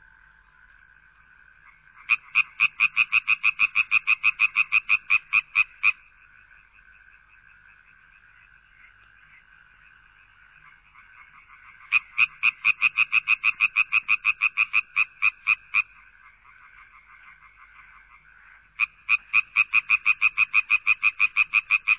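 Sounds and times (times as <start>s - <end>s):
frog croaking in loud rasping pulses and trills: 0.0s - 21.9s.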